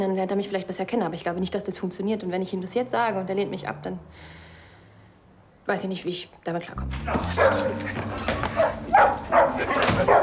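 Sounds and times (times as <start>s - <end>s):
speech: 0.0s - 4.4s, 5.7s - 10.2s
dog barking in short excited bursts: 7.1s - 10.2s.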